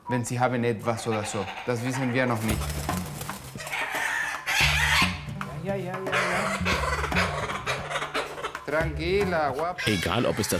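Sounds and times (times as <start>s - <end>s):
speech: 0.1s - 3.1s, 8.7s - 10.5s
caged bird calling in raspy clucking bursts: 0.9s - 2.6s, 3.6s - 5.4s, 6.0s - 8.8s, 9.6s - 10.5s.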